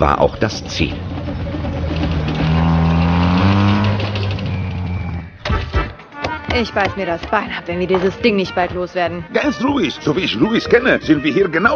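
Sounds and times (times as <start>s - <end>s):
speech: 0.0s - 1.2s, 6.5s - 11.7s
truck loaded with melons driving: 0.0s - 5.8s
rough clatter: 0.2s - 5.2s.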